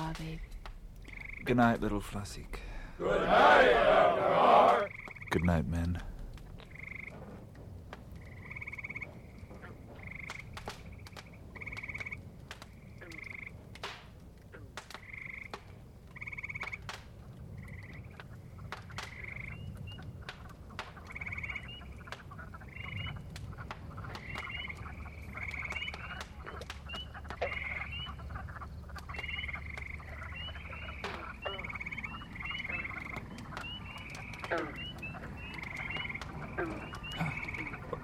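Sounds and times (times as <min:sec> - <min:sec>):
dense chorus of croaking frogs: 0:00.0 - 0:01.8, 0:04.5 - 0:38.0
low rumble: 0:00.0 - 0:38.0
speech: 0:00.2 - 0:00.5, 0:01.4 - 0:06.1.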